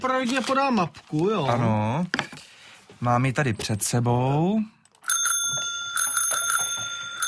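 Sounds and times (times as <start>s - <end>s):
speech: 0.0s - 2.3s, 3.0s - 4.8s
bicycle bell ringing in a game: 5.0s - 7.2s.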